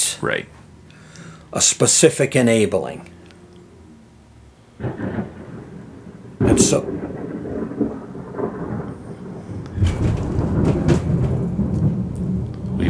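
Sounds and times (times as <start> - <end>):
faint rain-like hiss: 0.0 - 12.8
speech: 0.1 - 0.6, 1.5 - 3.2, 6.6 - 7.1
loud thunder rumbling and shaking an office: 4.8 - 12.8.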